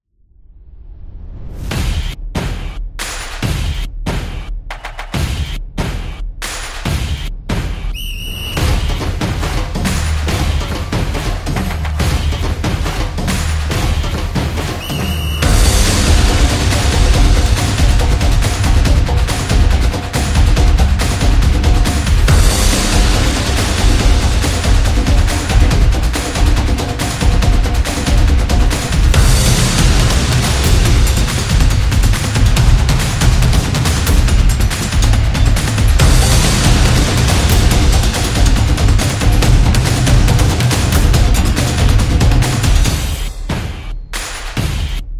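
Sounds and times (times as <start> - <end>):
soccer drums: 1.2 - 45.1.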